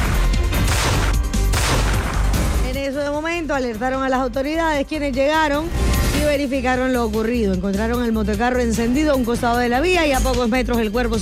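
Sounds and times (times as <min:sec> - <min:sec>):
loud dense burst of rapid gunfire: 0:00.0 - 0:02.6
speech: 0:03.5 - 0:11.2.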